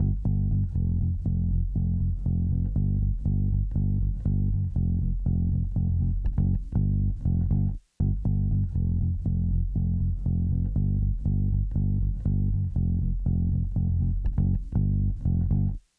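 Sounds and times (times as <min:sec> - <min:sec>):
bass effect: 0:00.0 - 0:15.8.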